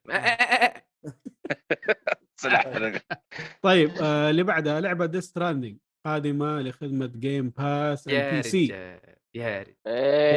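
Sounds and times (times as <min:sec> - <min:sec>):
sheep bleating: 0:00.1 - 0:00.8
short choppy vocal bursts: 0:01.3 - 0:04.1, 0:08.1 - 0:10.3
laughter: 0:01.3 - 0:04.9, 0:08.1 - 0:08.7, 0:09.9 - 0:10.3
speech: 0:02.5 - 0:10.3.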